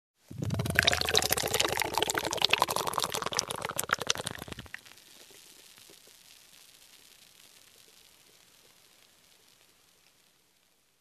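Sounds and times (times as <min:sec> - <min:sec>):
soda pouring: 0:00.3 - 0:05.4.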